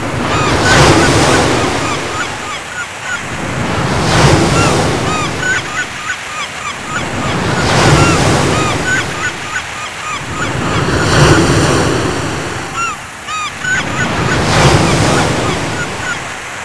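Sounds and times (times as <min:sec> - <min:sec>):
seashore waves: 0:00.0 - 0:16.6.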